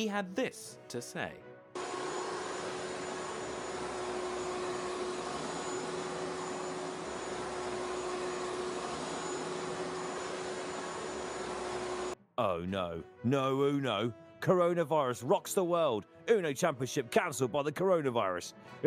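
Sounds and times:
speech: 0:00.0 - 0:01.5, 0:12.4 - 0:18.8
Henry hoover vacuum cleaner running: 0:01.8 - 0:12.2.

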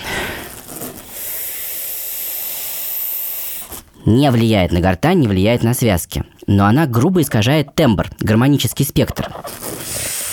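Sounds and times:
helium-air gas mixture hissing under pressure: 0:00.0 - 0:03.9, 0:09.8 - 0:10.3
speech: 0:04.0 - 0:09.7.

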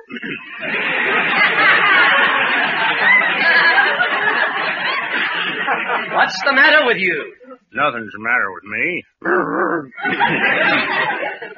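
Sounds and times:
laughter: 0:00.0 - 0:07.1, 0:09.8 - 0:11.5
speech: 0:06.3 - 0:11.2
man imitating a dog's growl: 0:09.2 - 0:10.0.

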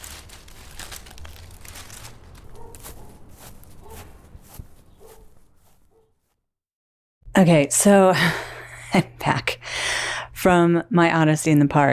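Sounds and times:
footsteps crunching over dry ground or leaves: 0:00.0 - 0:06.4
speech: 0:07.4 - 0:09.6, 0:10.4 - 0:11.9.

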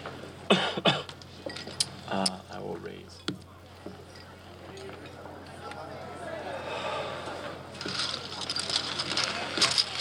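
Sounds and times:
faint sounds: 0:00.0 - 0:09.9
speech: 0:00.5 - 0:01.0
person coughing: 0:00.5 - 0:01.1.

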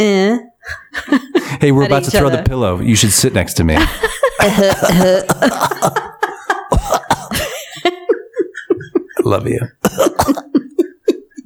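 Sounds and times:
speech: 0:00.0 - 0:06.2, 0:09.2 - 0:10.4
laughter: 0:00.6 - 0:02.3, 0:03.7 - 0:11.4
throaty voiced sounds: 0:03.8 - 0:07.6, 0:09.2 - 0:10.6
person coughing: 0:04.4 - 0:07.8, 0:09.8 - 0:11.4.

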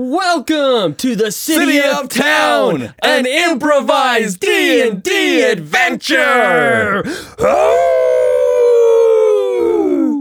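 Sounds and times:
speech: 0:00.0 - 0:08.0
person howling like a wolf: 0:06.7 - 0:10.1.

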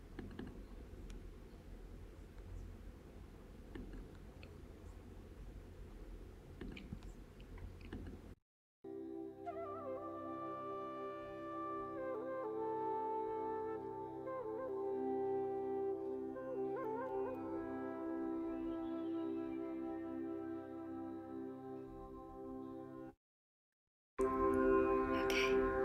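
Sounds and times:
soft steady instrumental music: 0:08.9 - 0:23.2, 0:24.2 - 0:25.8.

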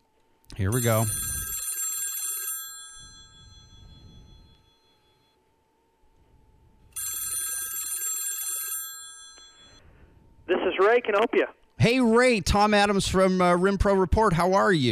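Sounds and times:
speech: 0:00.6 - 0:01.3, 0:10.8 - 0:14.9
telephone ringing on an outgoing call: 0:00.6 - 0:05.4, 0:06.9 - 0:09.9.

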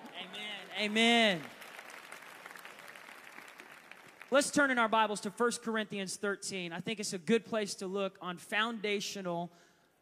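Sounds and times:
audience applause: 0:00.0 - 0:04.5
speech: 0:00.8 - 0:01.6, 0:04.3 - 0:09.7.

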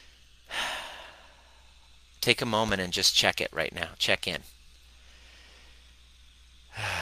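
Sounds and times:
deep airy breath in and out taken as a breathing exercise: 0:00.0 - 0:01.8, 0:05.0 - 0:06.0, 0:06.7 - 0:07.0
speech: 0:02.2 - 0:04.6.

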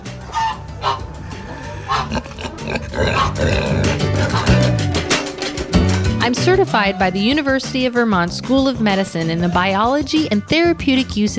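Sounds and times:
hens clucking: 0:00.3 - 0:05.7
giant old pig grunting and snorting on a rescue farm: 0:01.0 - 0:05.6
speech: 0:06.3 - 0:11.3.

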